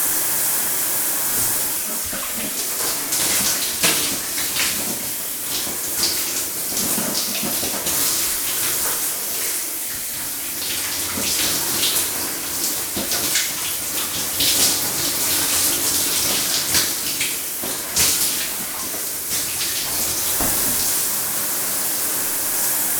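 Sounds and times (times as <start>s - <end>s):
shower running: 0.0s - 22.9s.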